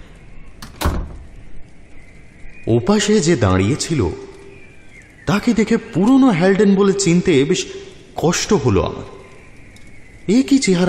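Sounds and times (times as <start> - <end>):
low hush: 0.0 - 10.8
door latch click: 0.6 - 1.2
heavy door thunk: 0.6 - 1.3
door opening: 0.6 - 1.4
speech: 2.6 - 4.3, 5.3 - 9.2, 10.3 - 10.8.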